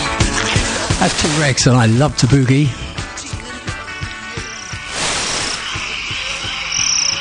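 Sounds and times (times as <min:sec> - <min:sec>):
speech: 0:01.0 - 0:02.8
cicadas buzzing: 0:03.8 - 0:07.1.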